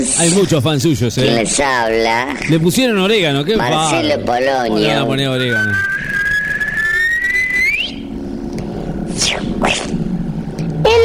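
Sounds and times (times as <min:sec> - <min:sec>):
rumbling sound: 0:00.0 - 0:11.0
speech: 0:00.1 - 0:06.2
person whistling one long rising note: 0:05.5 - 0:08.0.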